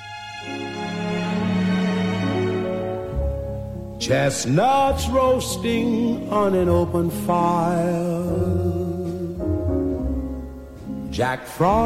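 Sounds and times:
sustained strings: 0.0 - 6.1
lush festive orchestral Christmas film music: 0.0 - 11.8
speech: 4.0 - 8.8, 11.2 - 11.8.

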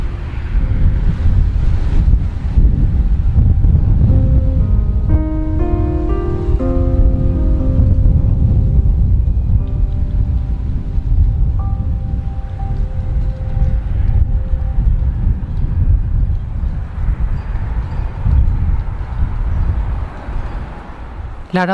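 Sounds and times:
strong wind blowing: 0.0 - 21.5
soft sustained tones: 3.8 - 18.3
speech: 21.6 - 21.7.

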